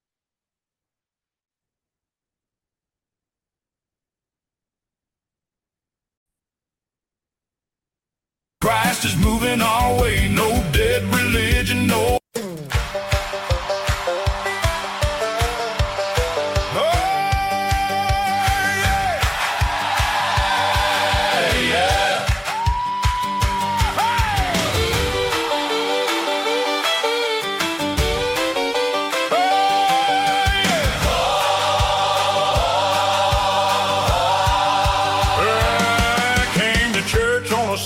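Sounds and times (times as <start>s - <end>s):
upbeat full-band gospel music with singing or organ: 8.6s - 37.8s
speech: 8.7s - 12.7s.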